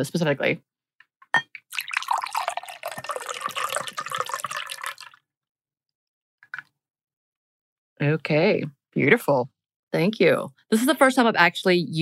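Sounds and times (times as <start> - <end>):
speech: 0.0 - 0.7, 1.3 - 1.8, 8.0 - 12.0
glass clinks: 1.4 - 1.6
cocktail poured into a glass: 1.4 - 5.2.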